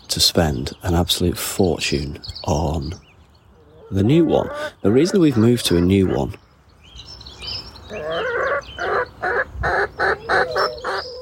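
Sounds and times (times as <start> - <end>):
speech: 0.2 - 3.0, 3.9 - 6.4
chicken clucking in a chicken run: 3.6 - 6.4, 7.9 - 11.2.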